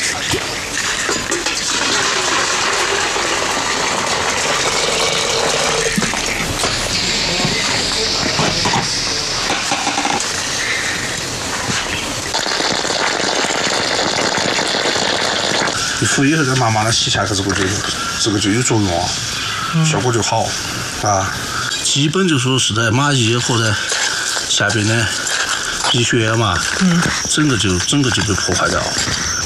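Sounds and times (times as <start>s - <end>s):
boiling water poured from a kettle into an ant nest: 0.0s - 29.4s
speech: 16.2s - 23.9s, 24.6s - 25.3s, 25.9s - 29.3s.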